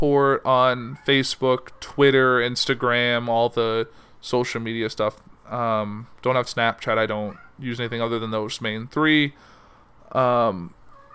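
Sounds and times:
speech: 0.0s - 9.5s, 10.1s - 10.8s
cat meowing: 7.3s - 7.6s, 10.9s - 11.1s.

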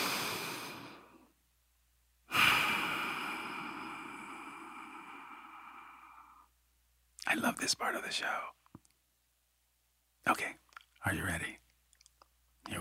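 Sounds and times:
deep breath: 0.0s - 1.3s, 2.3s - 6.5s
speech: 7.3s - 8.6s, 10.2s - 11.6s.

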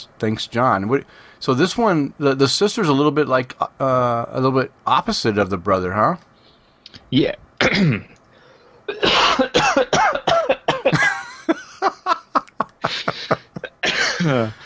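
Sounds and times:
speech: 0.1s - 6.3s, 7.1s - 8.1s, 14.2s - 14.6s
person coughing with something caught in the throat: 7.6s - 8.1s, 8.9s - 11.4s, 12.9s - 14.6s
laughter: 10.9s - 14.5s
throat clearing from someone with something caught in the throat: 13.6s - 14.6s.

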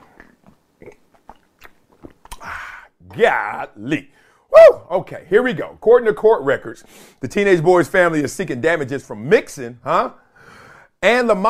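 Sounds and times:
slurping breathy swallow: 0.0s - 2.9s
person sipping a drink with wet mouth clicks: 0.0s - 3.0s
speech: 3.2s - 10.2s, 11.0s - 11.4s.

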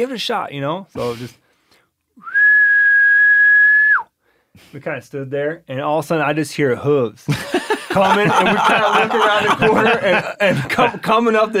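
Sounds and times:
speech: 0.0s - 1.4s, 4.6s - 11.5s
person whistling in imitation of a bull elk bugle: 2.2s - 4.1s
laughter: 7.3s - 11.5s.

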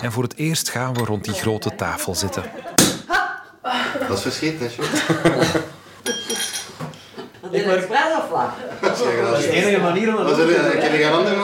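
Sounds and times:
speech: 0.0s - 2.9s, 3.7s - 5.7s, 7.6s - 11.4s
lively chatter: 0.9s - 6.0s, 7.0s - 11.4s
people laughing: 2.1s - 5.9s, 7.0s - 9.6s
glasses of cava clinking in a toast: 6.0s - 7.0s.

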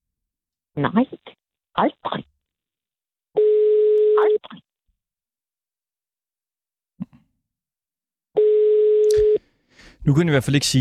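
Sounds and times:
speech: 0.8s - 2.3s, 10.1s - 10.8s
telephone ringing tone from a call reaching an answering machine: 3.4s - 4.4s, 8.4s - 9.4s.

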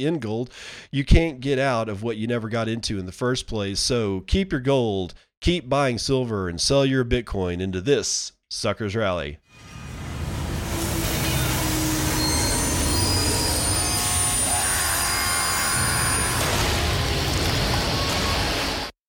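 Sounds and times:
speech: 0.0s - 9.8s
train rolling along the tracks: 9.6s - 18.1s
train wheels squealing: 11.0s - 16.4s.

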